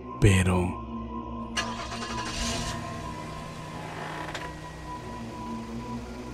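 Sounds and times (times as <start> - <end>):
speech: 0.2 - 0.8
car engine cranking and settling into a steady idle: 1.5 - 6.3.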